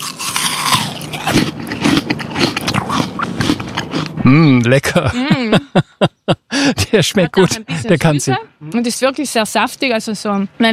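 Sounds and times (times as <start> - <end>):
crisp crunchy bites into a firm Kanzi apple: 0.0 - 4.7
speech: 4.3 - 10.7
laughter: 4.4 - 8.2.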